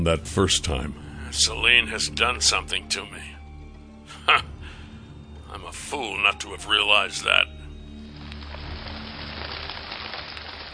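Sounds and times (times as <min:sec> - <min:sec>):
speech: 0:00.0 - 0:03.4, 0:04.2 - 0:04.5, 0:05.5 - 0:07.6
heavy rain pelting down: 0:07.8 - 0:10.7.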